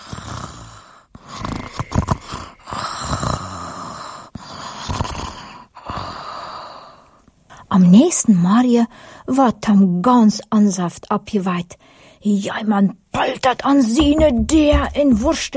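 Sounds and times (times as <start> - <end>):
slow steady breathing with soft snores: 0.0 - 7.6
speech: 7.8 - 15.5.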